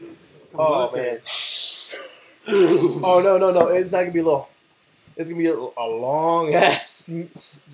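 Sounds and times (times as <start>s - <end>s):
speech: 0.6s - 1.4s, 2.4s - 4.5s, 5.2s - 7.7s
voice imitating loud exaggerated sniffing of hair: 1.2s - 2.6s.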